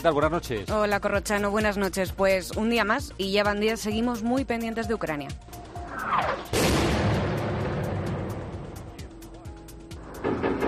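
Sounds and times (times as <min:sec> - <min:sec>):
speech: 0:00.0 - 0:06.8
gunfire shots: 0:06.5 - 0:08.6
loud rumbling din: 0:06.6 - 0:09.0.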